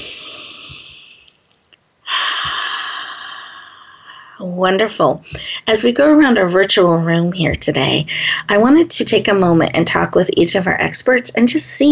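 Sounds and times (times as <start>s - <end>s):
deep breathing during a guided breathing exercise: 0.0s - 1.3s, 2.0s - 4.4s, 8.1s - 8.5s
speech: 4.4s - 11.9s.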